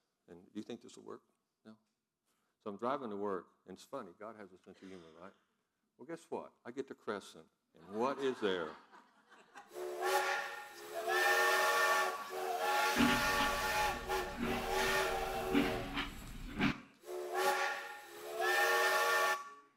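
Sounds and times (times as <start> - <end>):
speech: 0.3 - 1.9, 2.6 - 9.0
laughter: 7.8 - 9.8
train whistle of a very long train blowing: 9.7 - 19.7
deep rumbling: 13.0 - 16.7.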